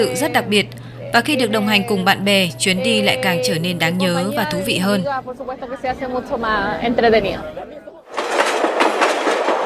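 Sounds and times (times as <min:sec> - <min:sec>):
speech: 0:00.0 - 0:07.8
voices chattering: 0:00.0 - 0:08.1
vintage 1920s passenger train running with rumble and rattle: 0:08.1 - 0:09.6.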